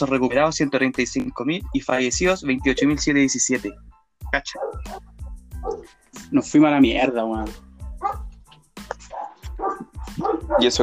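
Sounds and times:
speech: 0.0s - 8.2s, 8.9s - 10.8s
dogs barking excitedly: 4.5s - 6.0s, 7.9s - 8.4s, 9.0s - 10.8s.

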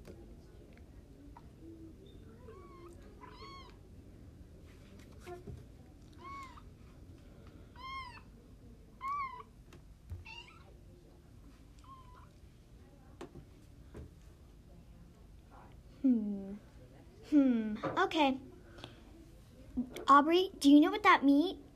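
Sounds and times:
faint hum: 0.0s - 21.7s
cat meowing: 2.4s - 3.8s, 6.2s - 6.6s, 7.8s - 8.2s, 9.0s - 9.5s, 10.2s - 10.7s
speech: 17.3s - 18.4s, 20.1s - 21.6s.

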